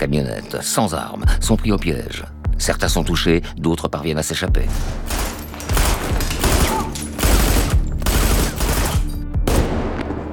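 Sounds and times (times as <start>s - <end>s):
speech: 0.0s - 5.4s
rapid gunfire at a roadblock: 4.9s - 9.8s.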